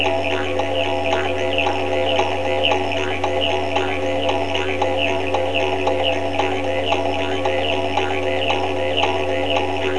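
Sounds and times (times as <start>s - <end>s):
didgeridoo in Australia: 0.0s - 9.9s.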